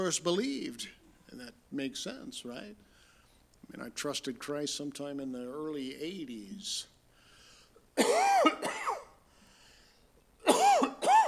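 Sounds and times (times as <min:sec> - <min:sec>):
speech: 0:00.0 - 0:02.9, 0:03.7 - 0:06.9, 0:08.0 - 0:08.7
person coughing: 0:08.0 - 0:09.1, 0:10.4 - 0:11.2.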